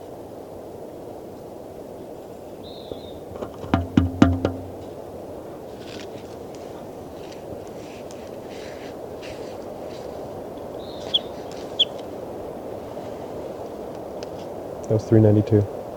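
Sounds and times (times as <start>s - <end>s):
short sharp high-pitched bird calls: 2.5s - 5.0s, 10.6s - 12.2s
speech: 14.9s - 15.8s.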